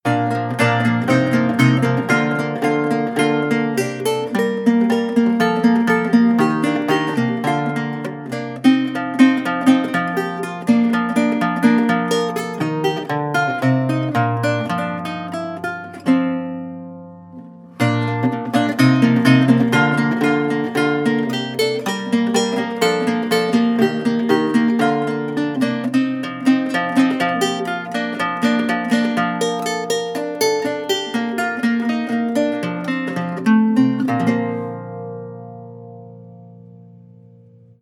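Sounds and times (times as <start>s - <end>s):
lute playing renaissance classical sequence: 0.0s - 37.1s.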